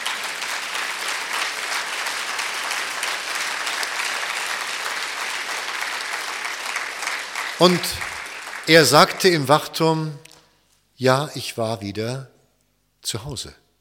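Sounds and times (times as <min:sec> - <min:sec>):
large audience applauding: 0:00.0 - 0:09.6
speech: 0:07.6 - 0:08.1, 0:08.7 - 0:10.2, 0:11.0 - 0:12.3, 0:13.0 - 0:13.6.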